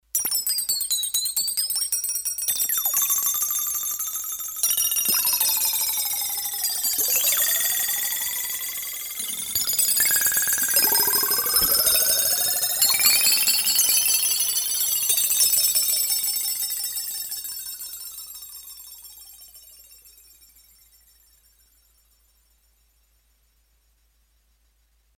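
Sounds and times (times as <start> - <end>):
water bells on a Roland D-10 synthesizer: 0.2 - 21.2.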